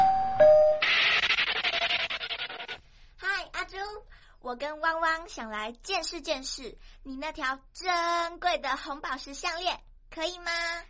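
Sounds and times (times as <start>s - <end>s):
two-note doorbell chime in a home: 0.0s - 0.8s
rhythmic rubbing or scraping: 0.8s - 2.8s
speech: 4.5s - 10.8s.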